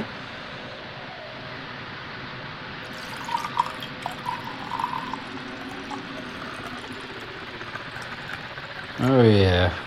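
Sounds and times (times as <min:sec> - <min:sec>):
red wine pouring into a glass: 0:02.8 - 0:09.1
speech: 0:09.0 - 0:09.8.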